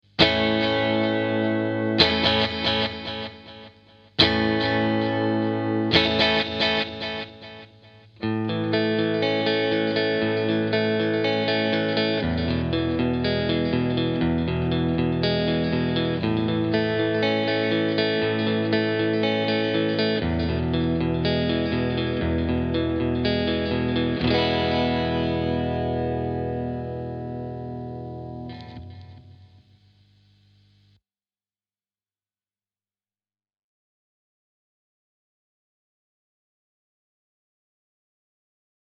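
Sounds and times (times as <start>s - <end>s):
guitar delay pedal effect: 0.2s - 29.6s.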